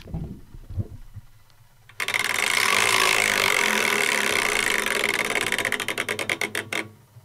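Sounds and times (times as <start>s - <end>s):
prize wheel spinning: 1.9s - 6.8s.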